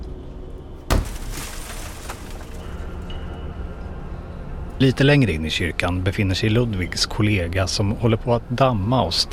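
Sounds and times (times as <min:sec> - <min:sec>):
dense rumbling background: 0:00.0 - 0:09.3
heavy thud: 0:00.9 - 0:02.8
shattering and crashing debris: 0:00.9 - 0:03.2
speech: 0:04.8 - 0:09.3.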